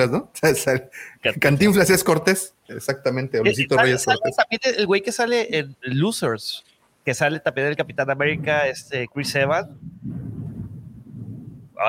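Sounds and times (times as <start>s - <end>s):
speech: 0.0s - 10.2s
laughter: 3.5s - 4.5s
thunder rumbling: 7.8s - 11.8s.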